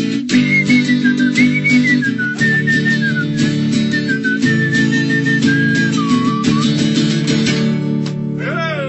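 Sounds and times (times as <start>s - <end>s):
instrumental accompaniment: 0.0s - 8.5s
person whistling a lilting melody: 0.3s - 7.0s.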